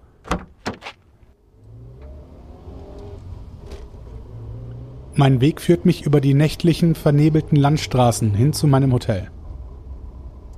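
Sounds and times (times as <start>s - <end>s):
person getting into a car: 0.2s - 4.5s
car engine starting up and idling: 1.3s - 10.5s
speech: 5.2s - 9.4s.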